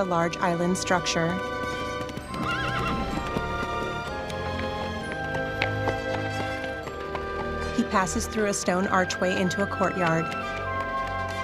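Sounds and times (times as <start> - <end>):
speech: 0.0 - 1.8, 7.9 - 10.6
busy tonal music: 0.0 - 11.4
horse-drawn carriage hooves clip-clopping on a muddy road: 0.4 - 11.4
horse whinnying loudly: 1.6 - 4.2.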